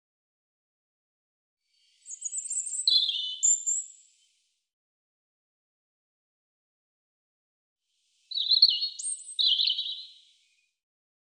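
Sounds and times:
European robin singing: 2.1 - 4.0, 8.3 - 10.3.

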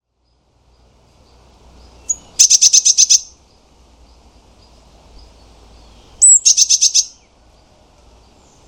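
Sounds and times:
Eurasian blue tit calls: 1.8 - 3.4, 5.2 - 7.3.

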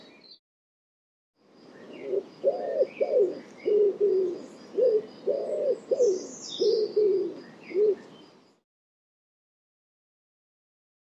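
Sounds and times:
bird cooing: 1.7 - 8.2.

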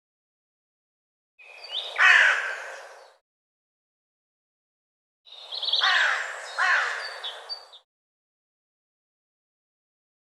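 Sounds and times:
bird giving harsh grating calls: 2.0 - 2.6, 5.7 - 7.2
soft high bird chirps: 5.3 - 7.9.

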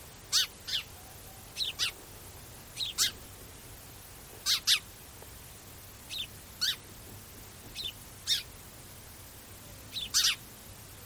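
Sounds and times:
faint background hiss: 0.0 - 11.0
bird giving brief sharp descending chirps: 0.3 - 2.0, 2.7 - 3.2, 4.4 - 4.9, 6.1 - 6.8, 7.7 - 8.5, 9.9 - 10.4.

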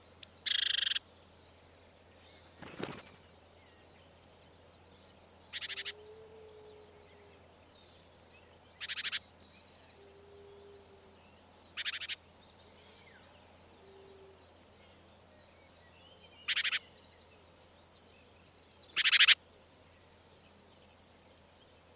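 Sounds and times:
great tit harsh buzzy rattling calls: 0.2 - 1.0, 2.4 - 3.3, 5.3 - 5.9, 8.6 - 9.2, 11.6 - 12.2, 16.3 - 16.8, 18.8 - 19.4.

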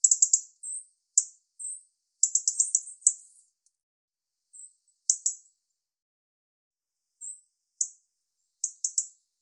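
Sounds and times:
European robin high-pitched twittering song: 0.0 - 3.6, 4.5 - 5.6, 7.2 - 9.3.

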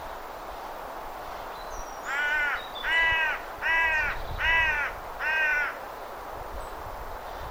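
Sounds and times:
bird cawing: 2.0 - 5.8.

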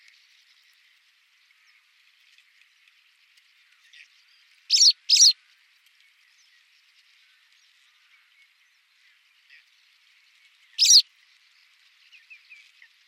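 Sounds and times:
white wagtail chirping calls: 4.7 - 5.4, 10.8 - 11.0.

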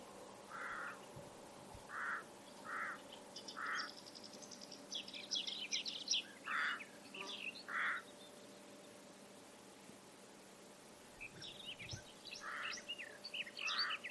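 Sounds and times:
hoarse pulsed bird calls: 1.9 - 4.2, 5.0 - 8.3, 11.2 - 14.0.

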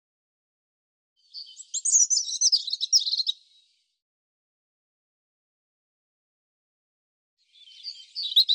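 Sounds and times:
European robin song with fast thin tumbling notes: 1.2 - 3.9, 7.4 - 8.5.

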